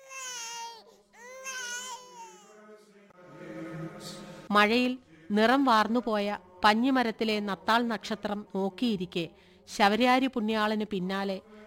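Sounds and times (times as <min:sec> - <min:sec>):
infant crying indoors: 0:00.0 - 0:02.6
speech: 0:04.5 - 0:11.6.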